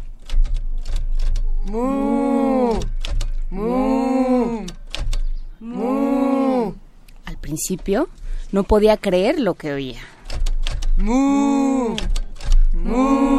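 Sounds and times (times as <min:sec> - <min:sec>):
typewriter keys clacking: 0:00.0 - 0:01.5, 0:02.8 - 0:03.5, 0:04.7 - 0:05.3, 0:10.2 - 0:11.0, 0:12.0 - 0:12.7
speech: 0:01.6 - 0:02.2, 0:07.6 - 0:10.1, 0:11.0 - 0:12.2, 0:12.8 - 0:13.3
long loud bellowing moos: 0:01.6 - 0:02.9, 0:03.5 - 0:04.8, 0:05.6 - 0:06.8, 0:11.0 - 0:13.3.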